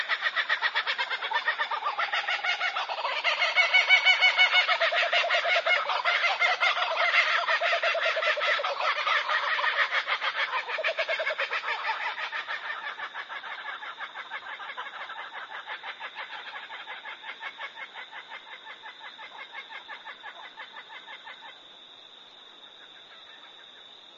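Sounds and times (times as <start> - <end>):
kookaburra laughing in the morning: 0.0 - 13.8.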